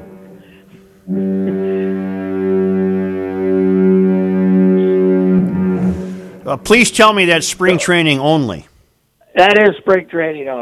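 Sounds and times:
deep foghorn blast in Duluth: 0.0 - 8.1
speech: 6.5 - 8.7, 9.4 - 10.5.

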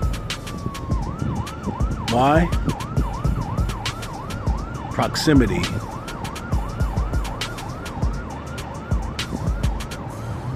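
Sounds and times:
bursts of city noise: 0.0 - 10.5
police or ambulance siren in a big city: 0.0 - 10.5
street traffic: 0.0 - 10.5
speech: 2.1 - 2.9, 5.0 - 5.9.

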